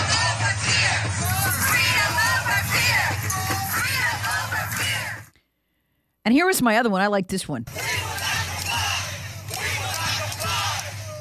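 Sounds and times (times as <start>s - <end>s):
large crowd of thousands walking in the street with voices, shouts and whoops: 0.0s - 5.3s, 7.7s - 11.2s
speech: 6.3s - 7.8s.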